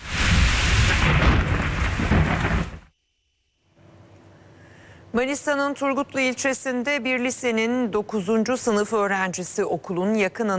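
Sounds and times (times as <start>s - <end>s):
dense hissing heavy rain at night over the capital city: 0.0s - 2.9s
loud continuous rumbling thunder at night over the capital city: 0.0s - 2.9s
speech: 5.2s - 10.5s.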